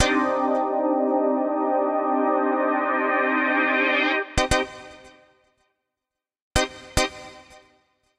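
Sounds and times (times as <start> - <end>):
polyphonic keyboard music loop in C minor at 110 bpm: 0.0 - 4.5.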